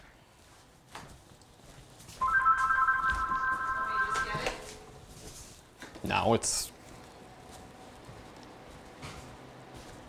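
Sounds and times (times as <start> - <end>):
telephone ringing with an electronic warble from a telemarketer call: 2.2 - 4.8
speech: 6.1 - 6.7.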